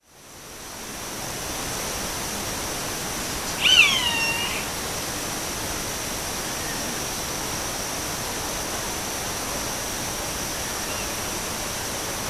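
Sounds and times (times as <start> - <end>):
steady background hiss: 0.1 - 12.2
roadside hawk nasal downward-sliding scream in Uruguay: 3.4 - 4.8.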